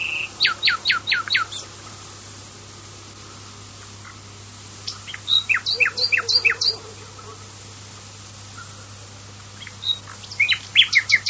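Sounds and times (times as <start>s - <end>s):
common nightingale song of sharp high chirps and whistled notes: 0.0s - 1.7s, 4.9s - 6.8s, 9.6s - 11.2s.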